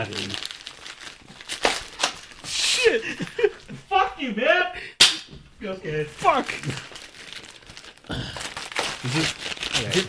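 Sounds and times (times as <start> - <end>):
speech: 0.0 - 0.5, 4.2 - 4.9, 5.6 - 7.0, 9.0 - 10.0
paper crumpling while unwrapping a poster: 0.0 - 3.1, 6.1 - 10.0.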